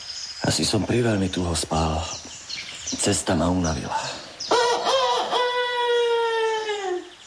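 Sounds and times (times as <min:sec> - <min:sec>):
speech: 0:00.4 - 0:02.3, 0:02.9 - 0:04.2
rooster crowing in a forest: 0:04.5 - 0:07.1.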